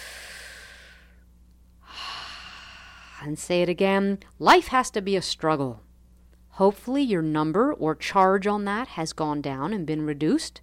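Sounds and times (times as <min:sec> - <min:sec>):
person breathing during a guided tapping exercise: 0:00.0 - 0:01.2, 0:01.8 - 0:03.3
speech: 0:03.2 - 0:05.8, 0:06.6 - 0:10.6.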